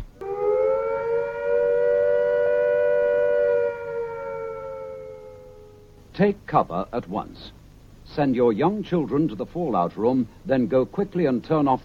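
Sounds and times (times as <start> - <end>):
air attack warning siren: 0.2 - 6.1
speech: 6.2 - 11.8.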